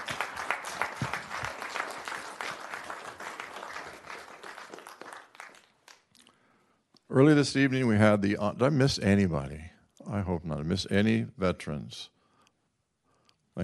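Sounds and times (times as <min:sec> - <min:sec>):
audience applause: 0:00.0 - 0:06.0
speech: 0:07.1 - 0:12.2.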